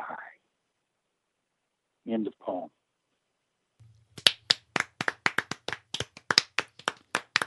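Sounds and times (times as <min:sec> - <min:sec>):
speech: 0:02.1 - 0:02.8
single person clapping in applause after a poem reading: 0:03.8 - 0:07.4.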